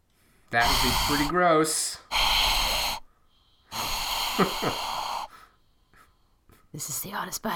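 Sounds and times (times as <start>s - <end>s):
exaggerated heavy wheezy breathing into microphone: 0.2s - 6.7s
speech: 0.5s - 2.1s, 4.4s - 4.9s, 6.7s - 7.5s.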